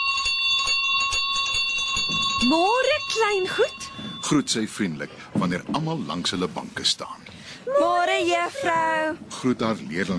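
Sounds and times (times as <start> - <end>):
electric school bell ringing: 0.0 - 5.0
speech: 2.4 - 10.1.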